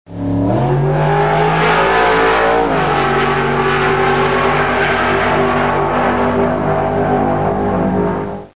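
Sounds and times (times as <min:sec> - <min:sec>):
motorcycles racing: 0:00.1 - 0:08.5.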